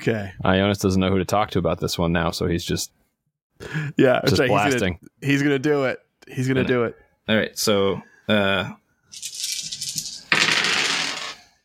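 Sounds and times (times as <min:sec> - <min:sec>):
speech: 0:00.0 - 0:03.0, 0:03.6 - 0:09.5
many dice clattering across a table: 0:09.1 - 0:11.6.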